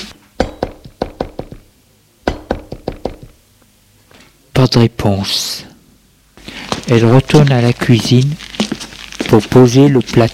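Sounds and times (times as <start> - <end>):
firm knocking on a wooden door: 0.4 - 1.7, 2.3 - 3.4
speech: 4.6 - 5.7, 6.9 - 8.4, 9.3 - 10.3.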